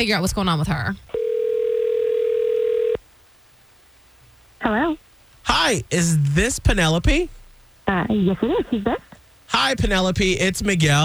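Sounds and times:
speech: 0.0s - 1.2s, 4.6s - 11.0s
telephone line tone: 1.2s - 3.0s.

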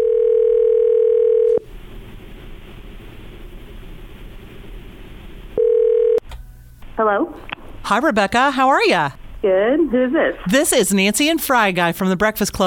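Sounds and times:
telephone ringback tone on an outgoing call: 0.0s - 1.6s, 5.6s - 6.2s
speech: 7.0s - 12.6s.

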